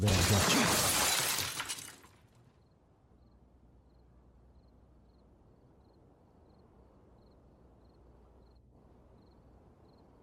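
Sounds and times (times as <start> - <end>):
speech: 0.0 - 0.9
glass shattering with tinkling fragments: 0.0 - 2.2.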